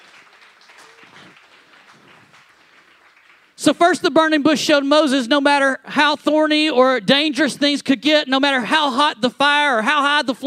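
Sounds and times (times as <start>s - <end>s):
crowd applauding: 0.0s - 3.7s
speech: 3.6s - 10.4s.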